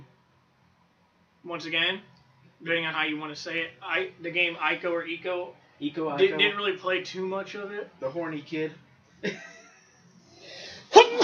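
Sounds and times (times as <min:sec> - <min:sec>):
speech: 0:01.4 - 0:09.5
person sneezing: 0:10.5 - 0:11.2.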